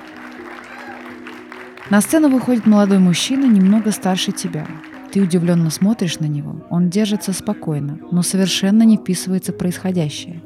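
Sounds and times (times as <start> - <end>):
audience applauding: 0.0 - 6.4
speech: 1.9 - 10.4.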